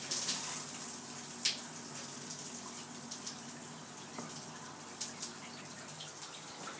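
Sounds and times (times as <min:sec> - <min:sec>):
shower running: 0:00.0 - 0:06.7
water taps and drips: 0:00.0 - 0:06.7.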